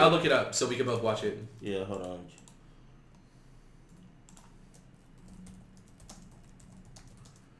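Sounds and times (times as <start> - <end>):
speech: 0.0 - 2.4
steady hiss: 0.0 - 7.5
typing on a computer keyboard: 3.9 - 7.5.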